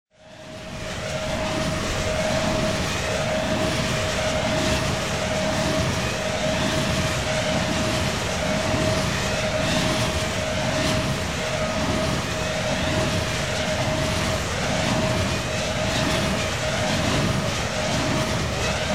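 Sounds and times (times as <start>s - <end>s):
turbine noise: 0.2s - 18.9s.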